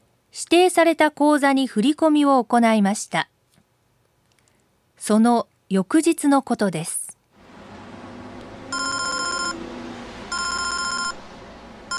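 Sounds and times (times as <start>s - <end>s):
speech: 0.3s - 3.3s, 5.0s - 7.0s
telephone ringing with bright electronic trill: 8.7s - 9.6s, 10.3s - 11.2s.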